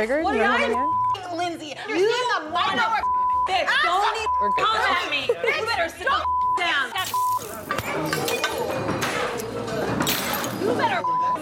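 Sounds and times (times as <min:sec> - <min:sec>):
speech: 0:00.0 - 0:08.4
voices talking and shouting: 0:00.0 - 0:11.3
glass shards tinkling: 0:07.0 - 0:08.7
glass shattering: 0:07.0 - 0:08.8, 0:10.0 - 0:10.6.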